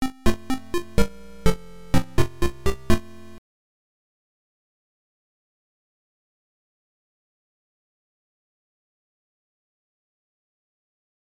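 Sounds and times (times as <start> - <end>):
success sound: 0.0 - 3.4.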